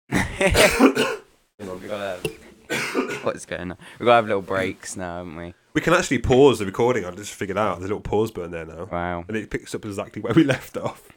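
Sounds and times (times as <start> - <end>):
throat clearing cough: 0.1 - 1.3, 2.3 - 3.3
speech: 0.4 - 11.1.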